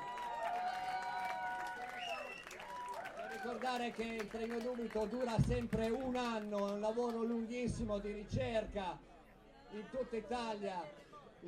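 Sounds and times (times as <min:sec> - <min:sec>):
audience cheering and whooping voices: 0:00.0 - 0:03.8
clapping of a sizable crowd: 0:00.0 - 0:07.6
speech: 0:03.4 - 0:09.1, 0:09.7 - 0:11.4.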